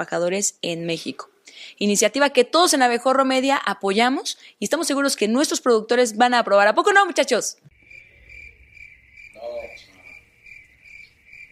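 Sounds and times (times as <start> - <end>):
speech: 0.0 - 7.7
crickets chirping: 7.7 - 11.5.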